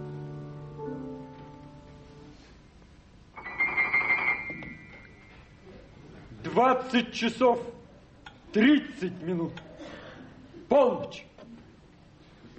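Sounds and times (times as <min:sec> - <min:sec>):
telephone ringing in a short buzzing burst: 0:03.4 - 0:05.6
speech: 0:06.6 - 0:07.7, 0:08.6 - 0:09.7, 0:10.7 - 0:11.3.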